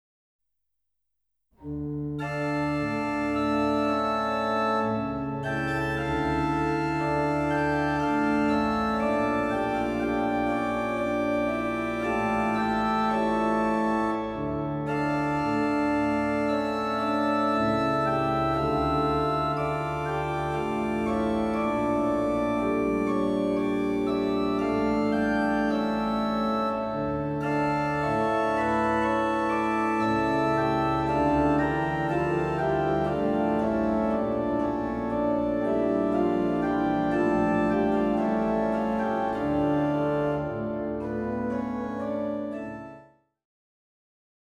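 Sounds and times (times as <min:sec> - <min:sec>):
organ: 0:01.6 - 0:43.1.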